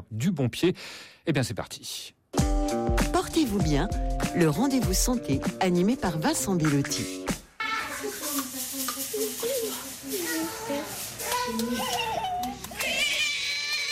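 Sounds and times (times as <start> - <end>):
speech: 0.1 - 7.3
steady hiss: 6.9 - 12.0
baby babbling and cooing happily: 10.2 - 13.2.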